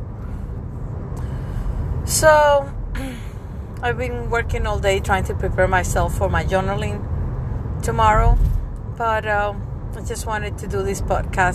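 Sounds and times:
car cabin road and engine drone while driving: 0.0 - 11.5
speech: 2.1 - 3.2, 3.8 - 7.1, 7.8 - 11.5.

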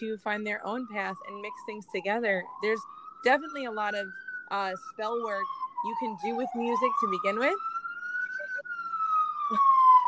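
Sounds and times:
speech: 0.0 - 7.7
siren passing in a Brooklyn street: 0.0 - 10.0.

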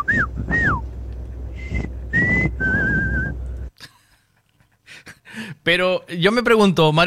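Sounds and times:
low rumble: 0.0 - 3.7
speech: 5.6 - 7.0.

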